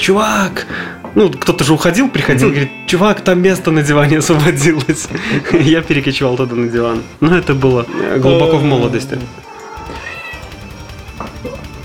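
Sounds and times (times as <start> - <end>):
speech: 0.0 - 9.5
laughter: 4.3 - 6.1, 7.7 - 9.3
cat meowing insistently: 9.4 - 10.6.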